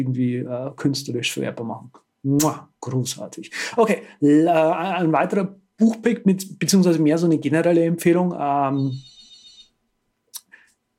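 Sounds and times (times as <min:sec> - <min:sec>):
speech: 0:00.0 - 0:09.1
phone ringing with a short bright electronic trill: 0:08.8 - 0:09.7.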